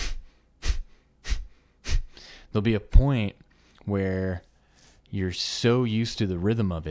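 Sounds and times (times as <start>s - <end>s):
sharp forceful exhalations through the nose in Kapalabhati breathing: 0.0s - 2.5s
speech: 2.5s - 4.5s, 5.1s - 6.8s.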